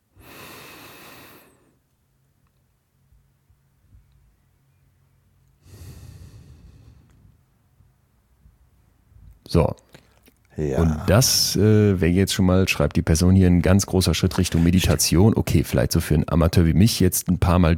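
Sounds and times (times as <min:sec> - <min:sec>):
slow airy breaths in a breathing exercise: 0:00.1 - 0:01.8, 0:05.6 - 0:07.4
speech: 0:09.5 - 0:10.0, 0:10.6 - 0:17.7.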